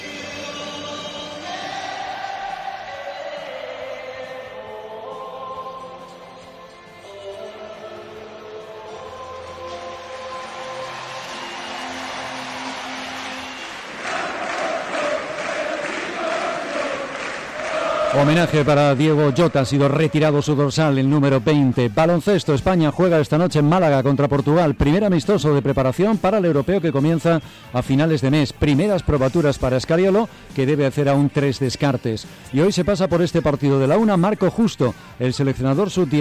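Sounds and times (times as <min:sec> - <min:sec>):
football stadium crowd singing together in a chant: 0:00.0 - 0:20.6
football stadium crowd applauding and cheering: 0:08.9 - 0:20.8
speech: 0:18.2 - 0:36.1.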